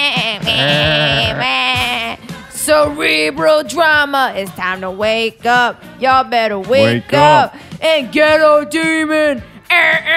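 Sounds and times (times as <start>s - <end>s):
goat bleating in long quavering cries: 0.2s - 1.9s
speech: 2.8s - 10.1s.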